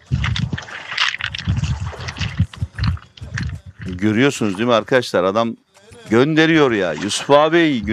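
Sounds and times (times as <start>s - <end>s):
sea water splashing and lapping against the shore at Fethiye Muğla Turkey: 0.0s - 4.8s, 6.6s - 7.9s
speech: 4.0s - 7.9s.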